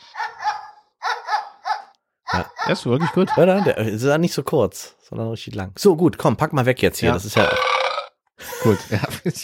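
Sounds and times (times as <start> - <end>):
dog barking: 0.0 - 3.9
speech: 2.4 - 7.8, 8.6 - 9.4
laughter: 8.4 - 9.4.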